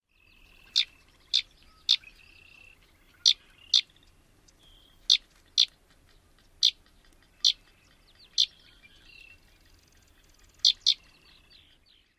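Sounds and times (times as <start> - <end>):
Sedge Wren calls: 0.1 - 12.1.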